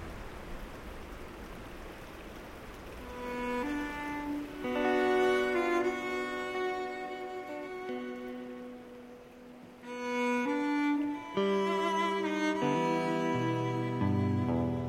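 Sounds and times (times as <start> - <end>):
distant creek rushing on a mountain: 0.0 - 14.8
sustained musical tones: 3.1 - 14.8.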